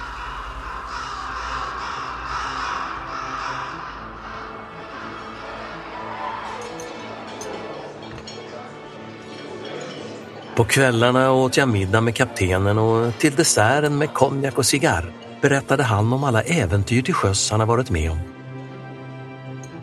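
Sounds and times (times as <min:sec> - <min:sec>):
flock of large birds cawing harshly following a ship at sea: 0:00.0 - 0:07.5
speech: 0:10.6 - 0:18.3.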